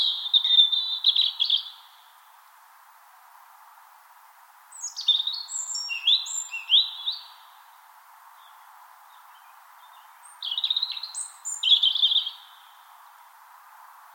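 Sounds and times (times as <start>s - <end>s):
European robin song of high thin tinkling warbles and trills: 0.0s - 2.4s, 4.7s - 13.3s, 14.0s - 14.1s
faint steady hiss: 0.0s - 14.1s.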